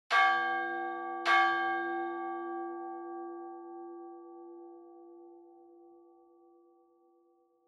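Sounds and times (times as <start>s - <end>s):
church bell: 0.1s - 7.6s.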